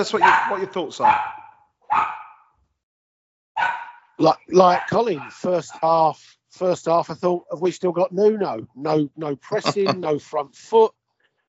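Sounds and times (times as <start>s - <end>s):
laughter: 0.0s - 1.0s, 4.2s - 10.8s
speech: 0.0s - 2.2s, 4.2s - 11.0s
dog barking: 0.0s - 2.5s, 3.6s - 6.0s.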